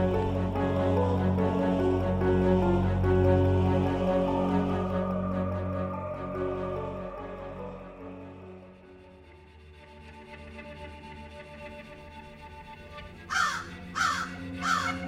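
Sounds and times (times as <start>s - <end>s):
sustained musical drone: 0.0s - 15.0s
crows cawing: 13.3s - 15.0s.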